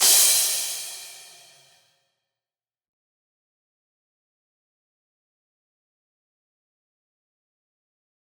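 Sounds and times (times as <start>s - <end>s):
psytrance cymbal: 0.0s - 1.7s.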